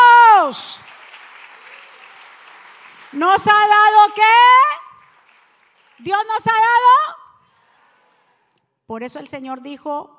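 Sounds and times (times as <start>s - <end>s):
crowd applauding: 0.0s - 6.6s
speech: 3.1s - 4.8s, 6.0s - 7.2s, 8.9s - 10.1s.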